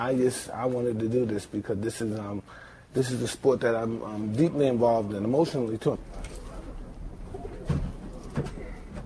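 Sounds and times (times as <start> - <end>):
speech: 0.0 - 6.3
hum: 0.0 - 9.0
pigeons cooing: 6.3 - 9.0.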